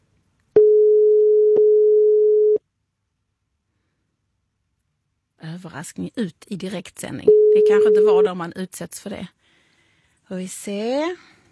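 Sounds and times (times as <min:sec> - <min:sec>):
telephone busy tone on an unanswered call: 0:00.6 - 0:02.6, 0:07.3 - 0:08.2
speech: 0:05.6 - 0:09.4, 0:10.3 - 0:11.4.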